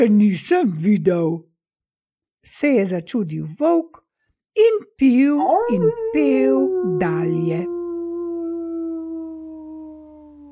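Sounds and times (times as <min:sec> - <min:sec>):
speech: 0:00.0 - 0:01.5, 0:02.4 - 0:04.0, 0:04.6 - 0:07.8
wolf howling: 0:05.4 - 0:10.5.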